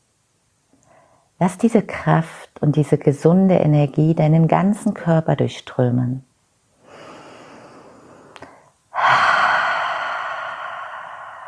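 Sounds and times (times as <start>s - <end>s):
speech: 1.4s - 6.3s
deep intense breathing: 6.8s - 11.4s.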